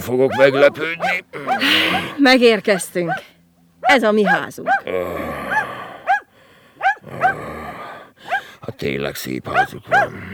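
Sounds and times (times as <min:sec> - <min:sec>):
speech: 0:00.0 - 0:05.4, 0:08.8 - 0:10.3
dog barking: 0:00.2 - 0:04.9, 0:05.5 - 0:07.4, 0:08.2 - 0:08.6, 0:09.5 - 0:10.2.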